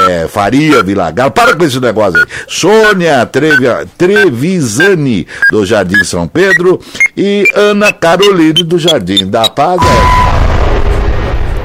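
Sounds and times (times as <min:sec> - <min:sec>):
speech: 0:00.1 - 0:10.2
explosion sound effect: 0:09.8 - 0:11.6.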